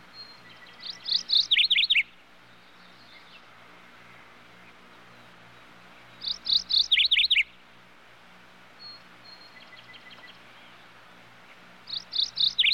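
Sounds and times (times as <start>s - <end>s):
various birds chirping in high rapid notes outdoors in the country: 0.0s - 7.8s, 8.7s - 12.7s.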